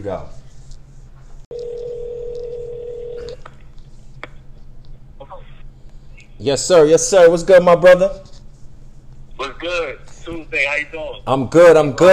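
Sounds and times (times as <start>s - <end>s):
speech: 0.0s - 0.4s, 6.4s - 8.3s, 9.4s - 12.1s
phone call steady electronic tone: 1.5s - 3.4s.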